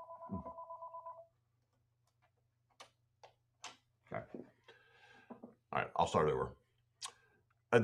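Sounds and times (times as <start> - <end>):
telephone ringing with electronic two-tone trill: 0.0 - 1.3
speech: 6.0 - 6.6.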